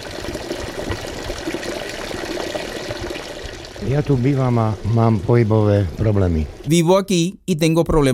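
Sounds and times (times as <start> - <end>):
healing spring water pouring at a spa: 0.0 - 6.7
speech: 3.9 - 8.1.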